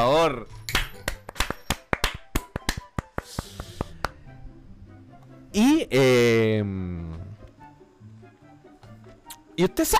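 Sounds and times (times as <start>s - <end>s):
speech: 0.2s - 0.7s, 5.5s - 7.2s, 9.6s - 9.9s
small group clapping hands in applause: 0.7s - 4.2s.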